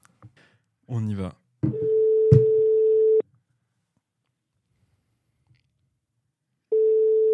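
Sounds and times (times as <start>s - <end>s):
speech: 0.9s - 1.4s
phone ringback tone while calling a friend: 1.7s - 3.2s, 6.7s - 7.3s.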